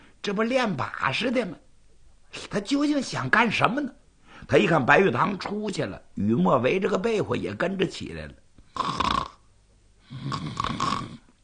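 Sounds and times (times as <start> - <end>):
speech: 0.2 - 1.6, 2.3 - 9.0
person imitating a child's snoring: 8.7 - 9.4, 10.0 - 11.3.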